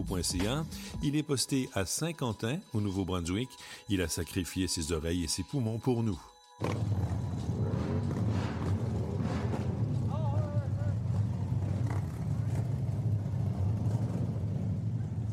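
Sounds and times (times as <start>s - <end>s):
speech: 0.0s - 7.6s
motorcycle engines roaring at a crowded rally: 6.6s - 15.3s.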